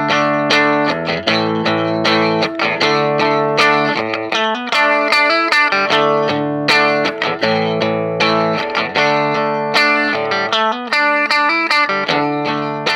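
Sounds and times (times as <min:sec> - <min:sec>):
clean electric guitar through an amp strumming ringing chords: 0:00.0 - 0:12.9.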